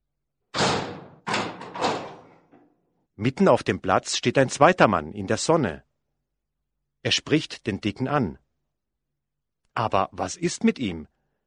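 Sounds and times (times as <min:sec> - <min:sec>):
house front door shut at a town square: 0:00.6 - 0:02.5
speech: 0:03.2 - 0:05.9, 0:07.0 - 0:08.4, 0:09.8 - 0:11.1.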